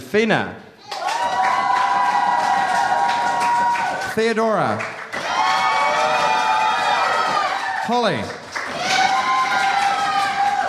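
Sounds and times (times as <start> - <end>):
speech: 0.1 - 0.6, 4.2 - 4.9, 7.9 - 8.4
crowd at a poetry slam cheering and whooping: 0.8 - 4.1, 5.1 - 7.9, 8.6 - 10.6.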